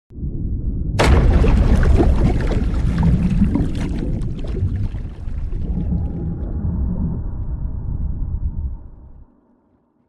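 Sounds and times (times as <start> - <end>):
naval underwater missile launch shot: 0.5 - 7.8.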